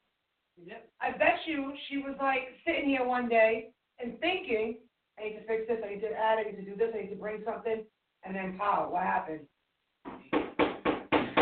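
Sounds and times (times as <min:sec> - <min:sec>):
speech: 0:00.6 - 0:10.4
firm knocks on a door: 0:10.1 - 0:11.4.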